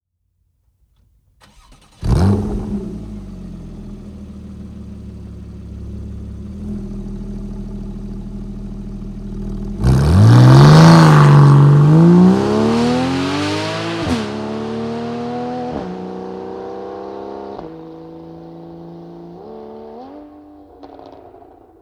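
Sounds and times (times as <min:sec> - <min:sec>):
GT car engine starting: 0:01.4 - 0:21.7
GT exhaust at full power with valve open: 0:01.6 - 0:07.5, 0:09.3 - 0:20.2.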